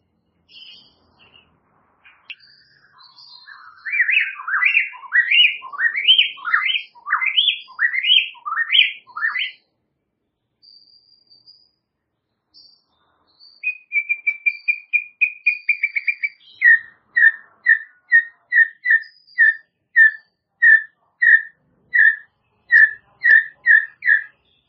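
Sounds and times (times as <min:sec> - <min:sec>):
White-rumped shama song with whistles: 0:02.3 - 0:09.6, 0:12.6 - 0:24.6.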